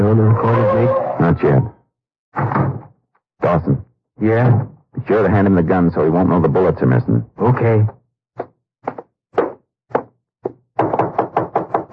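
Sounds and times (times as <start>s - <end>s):
speech: 0.1s - 2.8s, 3.4s - 8.5s
knocking on a door: 8.8s - 11.9s.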